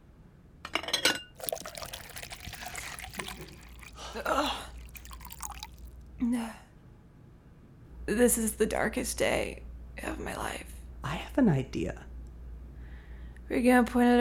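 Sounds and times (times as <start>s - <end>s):
glass clinking: 1.4s - 5.9s
water pouring into a glass: 1.4s - 6.1s
speech: 4.2s - 4.7s, 6.2s - 6.6s, 8.1s - 9.6s, 10.2s - 10.7s, 11.4s - 12.0s, 13.5s - 14.1s.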